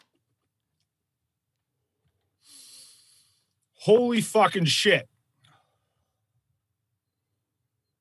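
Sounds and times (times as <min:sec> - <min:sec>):
sharp forceful sniff at a glass of bourbon: 0:02.4 - 0:03.4
speech: 0:03.8 - 0:05.1.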